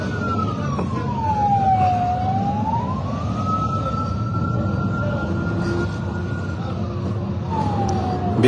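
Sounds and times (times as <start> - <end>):
ambulance siren wailing with a slow sweeping tone: 0.0 - 8.4
constant loud rumble of street traffic: 0.0 - 8.4.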